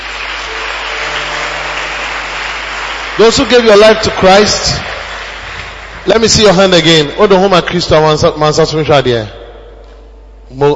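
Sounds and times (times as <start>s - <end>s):
large crowd applauding: 0.0s - 7.5s
speech: 3.2s - 4.9s, 6.0s - 9.4s, 10.5s - 10.7s.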